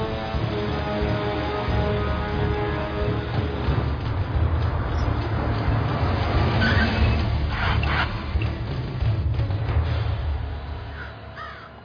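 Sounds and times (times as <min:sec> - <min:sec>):
car engine rumbling: 0:00.2 - 0:11.4
harsh crow-like caws: 0:10.9 - 0:11.8.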